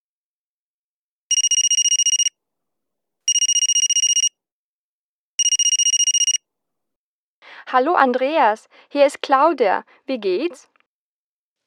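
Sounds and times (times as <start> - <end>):
telephone ringing with electronic trilling rings: 1.3 - 2.3, 3.3 - 4.3, 5.4 - 6.4
speech: 7.7 - 10.7.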